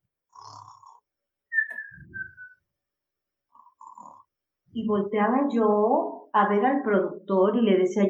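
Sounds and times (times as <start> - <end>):
person imitating snoring with nasal snorts and whistling exhales: 0.3 - 1.0, 3.8 - 4.3
speech: 4.8 - 8.0.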